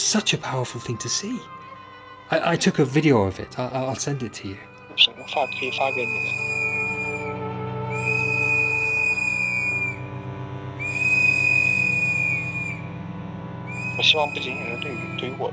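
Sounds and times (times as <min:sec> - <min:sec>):
speech: 0:00.1 - 0:01.6, 0:02.3 - 0:06.5, 0:14.0 - 0:15.5
crowd blowing shrill whistles outside hospital: 0:04.9 - 0:15.5.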